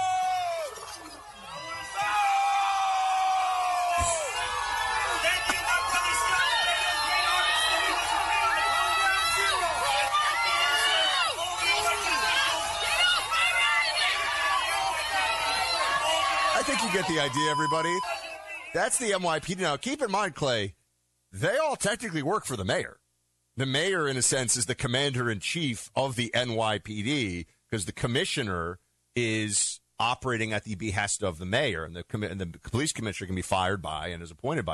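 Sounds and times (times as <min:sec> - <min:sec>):
large crowd booing and jeering a speaker off stage: 0:00.0 - 0:18.8
speech: 0:16.9 - 0:18.1, 0:18.8 - 0:23.0, 0:23.6 - 0:34.7.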